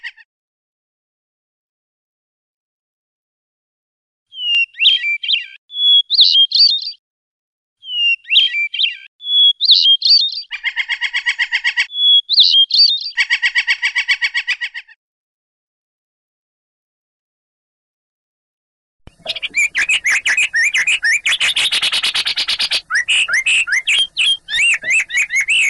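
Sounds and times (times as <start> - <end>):
Oriental magpie-robin rolling song: 4.3 - 7.0, 7.8 - 15.0, 19.1 - 25.6.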